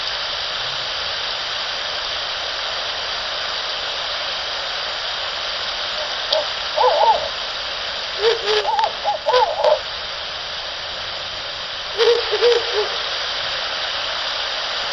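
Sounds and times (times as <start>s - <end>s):
steady hiss: 0.0s - 14.9s
male and female Ural owl hooting: 5.9s - 9.9s, 11.9s - 13.2s.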